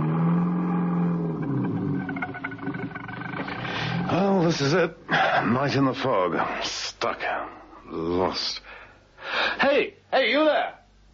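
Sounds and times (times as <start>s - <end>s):
car engine drone while crawling slowly through thick fog at night: 0.0s - 4.4s
speech: 4.1s - 8.7s, 9.3s - 10.8s.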